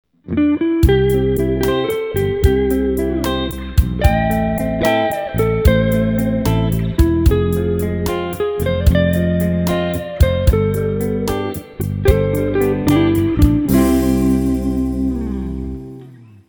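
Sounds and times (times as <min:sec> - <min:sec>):
slow rock music: 0:00.8 - 0:16.3.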